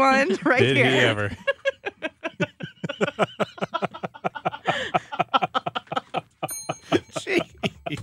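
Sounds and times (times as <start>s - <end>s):
speech: 0.0s - 1.5s
rhythmic laughter and chatter from people: 0.0s - 8.0s
single bright bell ding: 6.5s - 7.4s.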